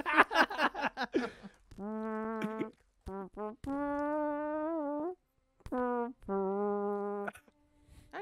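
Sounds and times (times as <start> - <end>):
laughter: 0.0 - 1.5
man farting a tune: 1.6 - 7.6.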